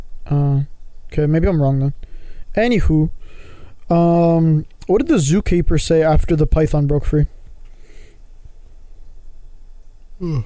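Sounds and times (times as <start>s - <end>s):
speech: 0.3s - 7.4s, 10.2s - 10.4s
short breathy hiss: 2.0s - 2.5s, 3.2s - 3.9s, 7.7s - 8.3s
loud drawn-out voiced yawn: 10.2s - 10.4s.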